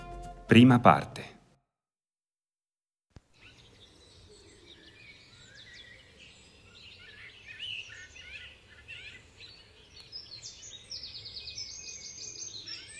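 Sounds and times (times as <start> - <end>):
speech: 0.5 - 1.3
many birds chirping and singing in a chorus: 3.4 - 12.9.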